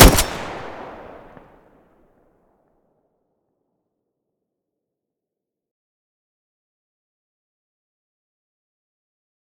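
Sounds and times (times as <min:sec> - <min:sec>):
Groza weapon muzzle blast: 0:00.0 - 0:01.4.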